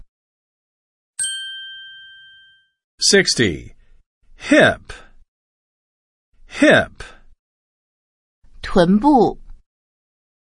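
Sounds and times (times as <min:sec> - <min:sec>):
single bell strike ringing: 0:01.2 - 0:02.7
speech: 0:03.0 - 0:03.8, 0:04.4 - 0:05.0, 0:06.5 - 0:07.2, 0:08.6 - 0:09.4.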